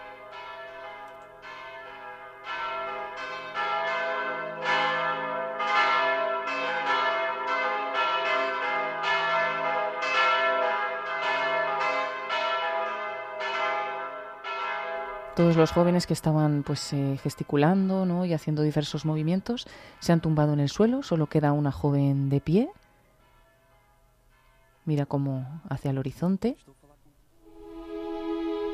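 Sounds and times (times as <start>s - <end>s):
bells ringing in a continuous peal: 0.0s - 17.2s, 27.5s - 28.7s
speech: 15.4s - 22.8s, 24.8s - 26.8s.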